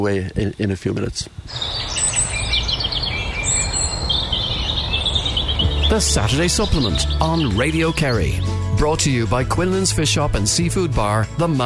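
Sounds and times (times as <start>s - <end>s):
speech: 0.0s - 2.2s, 5.9s - 11.6s
faint distant birdsong outdoors: 1.3s - 9.2s.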